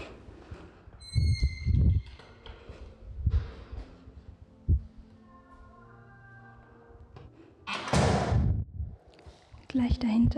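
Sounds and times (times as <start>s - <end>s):
heavy door hinges creaking: 1.0s - 2.8s
heavy door swinging shut with a rushing clatter: 7.7s - 8.5s
heavy door thudding: 7.7s - 8.6s
speech: 9.8s - 10.3s.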